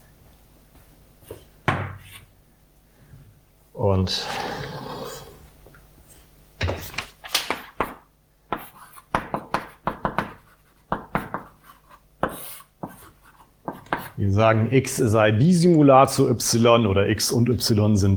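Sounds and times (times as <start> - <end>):
speech: 3.8 - 4.6, 14.2 - 18.1
scratchy strokes writing a curved equals sign on a board: 7.8 - 14.2.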